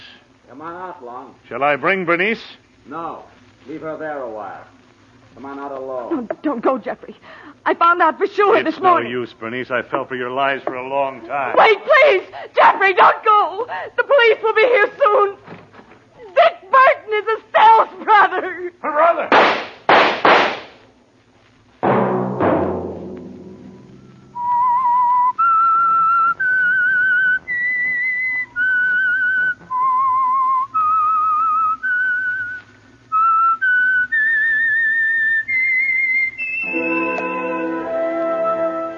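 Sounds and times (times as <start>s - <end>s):
speech: 0.5s - 4.8s, 5.4s - 15.6s, 16.4s - 19.6s
sharp booming bursts: 19.3s - 20.8s, 21.8s - 24.4s
solo whistler whistling a slow theme melody: 24.0s - 38.9s
full orchestral chord: 36.6s - 38.9s.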